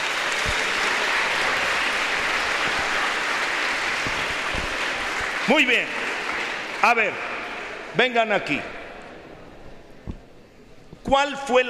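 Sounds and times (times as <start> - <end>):
group applauding after a balloon experiment in a class: 0.0 - 7.9
speech: 5.5 - 6.0, 6.8 - 7.3, 7.9 - 8.7, 11.1 - 11.6.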